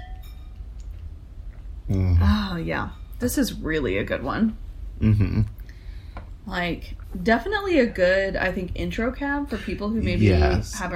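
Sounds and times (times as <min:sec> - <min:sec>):
wine glasses clinking in a toast: 0:00.0 - 0:00.7
low steady rumble: 0:00.5 - 0:10.9
speech: 0:01.9 - 0:05.6, 0:06.4 - 0:10.9.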